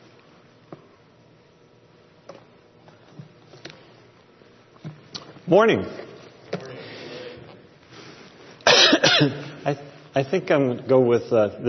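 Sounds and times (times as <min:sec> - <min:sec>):
speech: 0:05.5 - 0:06.0, 0:09.2 - 0:11.6
person coughing: 0:08.6 - 0:09.6.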